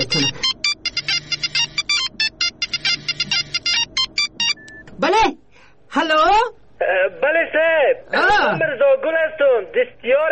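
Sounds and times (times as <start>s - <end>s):
phone ringtone with rapid electronic melody of beeps: 0.0s - 4.8s
speech: 0.1s - 0.4s, 5.0s - 5.4s, 6.0s - 6.2s, 7.5s - 10.2s.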